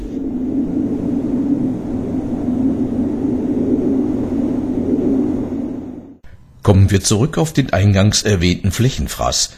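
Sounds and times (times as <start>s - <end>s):
broad whooshing noise: 0.0s - 6.5s
wind turbine droning rumble: 0.0s - 9.5s
speech: 6.9s - 9.5s.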